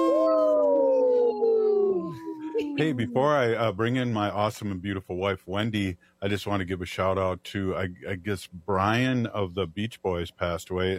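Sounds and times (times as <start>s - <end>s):
people imitating a wolf howl: 0.0s - 3.6s
speech: 2.8s - 10.9s.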